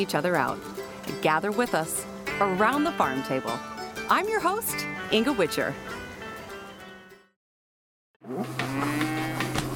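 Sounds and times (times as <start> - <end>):
speech: 0.0 - 6.0
cow mooing: 8.2 - 9.6.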